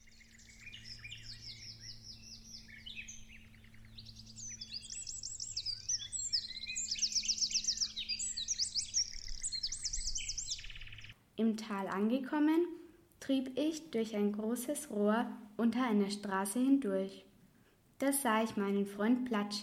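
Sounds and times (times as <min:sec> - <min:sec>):
several birds singing with chirps and warbling trills: 0:00.0 - 0:11.2
speech: 0:11.5 - 0:17.3, 0:18.0 - 0:19.6.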